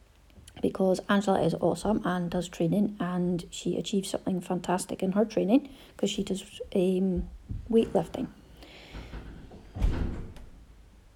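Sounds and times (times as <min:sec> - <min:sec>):
speech: 0:00.6 - 0:08.4
door banging shut indoors: 0:08.9 - 0:10.8.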